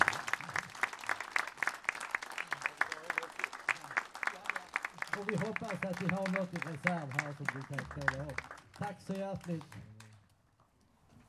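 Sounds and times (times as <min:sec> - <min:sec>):
audience applause: 0:00.0 - 0:10.3
speech: 0:05.2 - 0:09.9.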